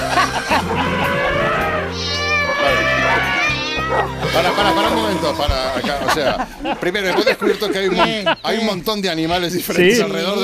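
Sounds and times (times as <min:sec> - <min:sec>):
laughter: 0:00.0 - 0:01.9, 0:04.1 - 0:08.8
voice singing at a very high pitch imitating a cat meowing: 0:00.9 - 0:05.7
speech: 0:04.6 - 0:10.4.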